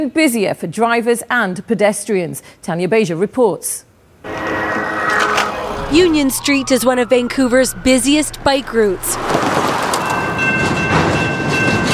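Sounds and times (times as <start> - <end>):
speech: 0.0 - 4.4, 5.9 - 9.4
faint high metallic squeals of a freight train: 4.3 - 10.6
freight train rumbling past on the rails through a Vancouver neighborhood: 5.9 - 11.9
freight train clatter: 9.2 - 11.9.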